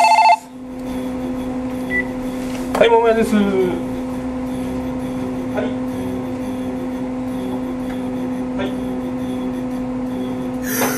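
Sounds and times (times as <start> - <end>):
shop telephone electronic trill: 0.0 - 0.5
low steady hum: 0.0 - 10.9
speech: 2.8 - 3.9.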